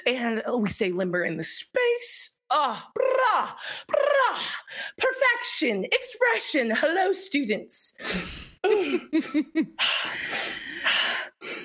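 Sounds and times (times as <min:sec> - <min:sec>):
speech: 0:00.0 - 0:10.6
heavy breathing with voiced pants: 0:08.0 - 0:11.6.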